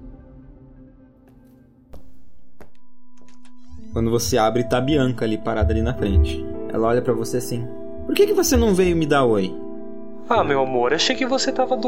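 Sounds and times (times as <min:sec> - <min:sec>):
speech: 0:03.9 - 0:09.6, 0:10.2 - 0:11.8
light knocking on a door: 0:05.5 - 0:06.7.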